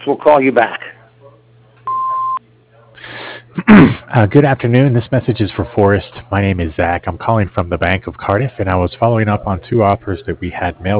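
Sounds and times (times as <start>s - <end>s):
speech: 0.0s - 0.8s, 3.7s - 10.9s
answering machine beep: 1.8s - 2.4s.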